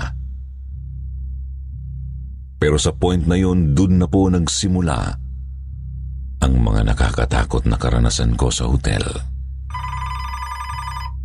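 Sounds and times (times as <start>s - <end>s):
speech: 2.6s - 5.2s, 6.4s - 9.3s
old hotel telephone bell ringing: 9.7s - 11.2s.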